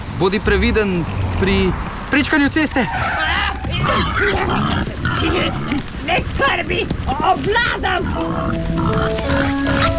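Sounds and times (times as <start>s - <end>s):
speech: 0.2s - 9.9s
wild boar grunting and snorting: 3.6s - 5.9s, 7.5s - 9.9s.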